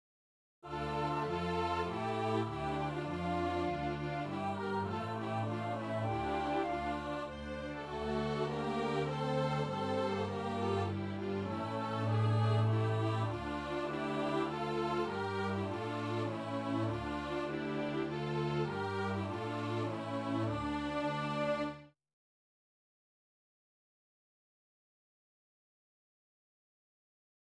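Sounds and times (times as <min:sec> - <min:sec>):
choral chant: 0:00.6 - 0:21.9.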